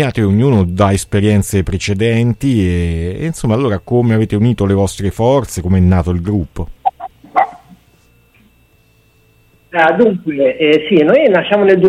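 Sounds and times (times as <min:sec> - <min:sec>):
speech: 0:00.0 - 0:06.8, 0:09.7 - 0:11.8
dog barking: 0:06.9 - 0:07.8.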